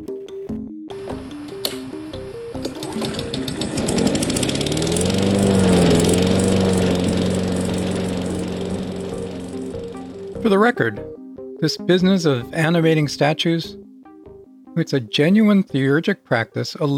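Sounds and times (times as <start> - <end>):
lawn mower engine running: 1.0 - 10.4
speech: 10.5 - 13.8, 14.8 - 16.9.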